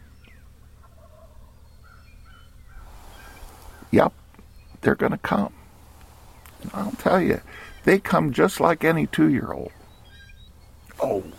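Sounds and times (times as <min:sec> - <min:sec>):
steady low rumble: 0:00.0 - 0:11.3
wild turkey yelping: 0:00.1 - 0:04.5, 0:05.7 - 0:08.0, 0:08.9 - 0:11.0
speech: 0:03.9 - 0:04.2, 0:04.8 - 0:05.6, 0:06.6 - 0:09.8, 0:11.1 - 0:11.3.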